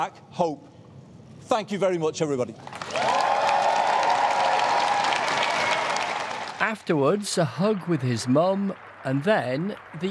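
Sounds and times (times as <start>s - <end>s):
speech: 0.0s - 0.7s, 1.4s - 3.1s, 6.6s - 10.0s
sizable crowd applauding after a political speech: 2.6s - 10.0s
faint cheer or whoop: 2.8s - 6.6s.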